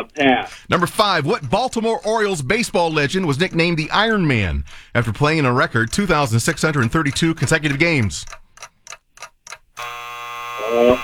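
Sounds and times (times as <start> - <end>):
speech: 0.0 - 8.4, 10.7 - 11.0
countdown ticking beats: 0.0 - 10.0
quiz show time-up electronic buzzer: 9.8 - 11.0.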